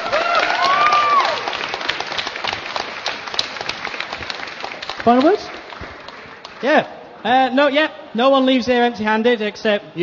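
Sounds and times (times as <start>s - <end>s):
whoops and a high cheer: 0.0s - 1.6s
room full of people applauding: 0.0s - 6.8s
speech: 5.0s - 5.5s, 6.6s - 10.0s.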